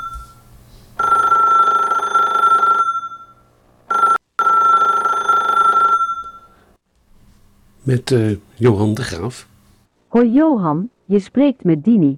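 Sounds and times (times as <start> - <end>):
telephone ringing with a loud steady electronic trill: 0.0 - 0.4, 1.0 - 6.6
speech: 7.9 - 9.5, 10.1 - 12.1.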